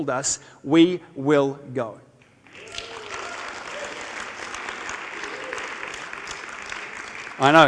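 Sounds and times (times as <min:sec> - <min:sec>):
speech: 0:00.0 - 0:02.7, 0:07.4 - 0:07.6
audience applause: 0:02.5 - 0:07.6.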